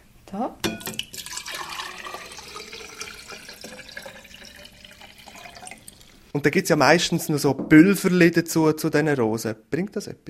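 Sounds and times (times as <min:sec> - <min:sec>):
speech: 0:00.3 - 0:00.7, 0:06.4 - 0:10.2
lukewarm tap water filling a vase for roses: 0:00.7 - 0:06.2.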